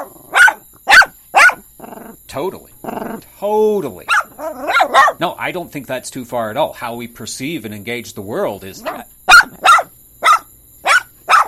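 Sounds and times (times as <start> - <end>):
dog barking: 0.0 - 2.0, 4.1 - 5.2, 8.8 - 11.4
speech: 2.3 - 9.1.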